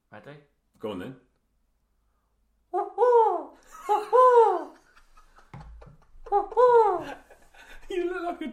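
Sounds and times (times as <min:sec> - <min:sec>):
speech: 0:00.2 - 0:01.3
person imitating an owl hoot with wavering voiced hoots: 0:02.7 - 0:04.8
laughter: 0:03.6 - 0:08.5.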